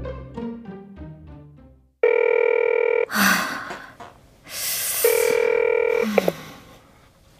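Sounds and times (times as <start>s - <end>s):
phone ringing with melodic electronic ringtone: 2.0s - 3.1s, 5.1s - 6.2s.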